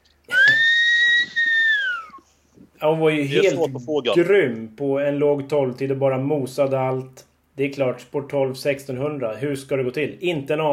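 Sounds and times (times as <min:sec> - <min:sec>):
person whistling one long steady breathy note: 0:00.3 - 0:02.3
speech: 0:02.8 - 0:10.7.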